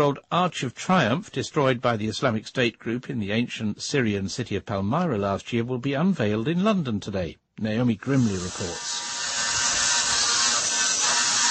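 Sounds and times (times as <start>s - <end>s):
speech: 0.0s - 9.0s
computer-controlled drill chiselling a block of marble: 8.0s - 11.4s.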